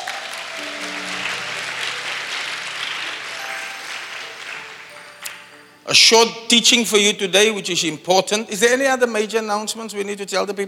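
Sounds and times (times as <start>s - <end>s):
many people applauding: 0.0s - 5.8s
speech: 5.9s - 10.6s.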